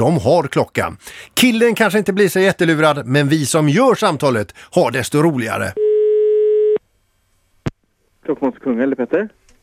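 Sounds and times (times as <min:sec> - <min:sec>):
speech: 0:00.0 - 0:05.8, 0:08.2 - 0:09.4
telephone ringback tone on an outgoing call: 0:05.8 - 0:06.8.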